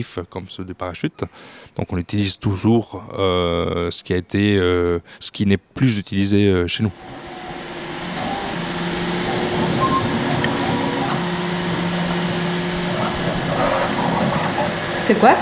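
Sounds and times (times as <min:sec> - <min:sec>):
speech: 0:00.0 - 0:07.2, 0:15.1 - 0:15.4
3D printer stepper motors whining: 0:06.9 - 0:15.4.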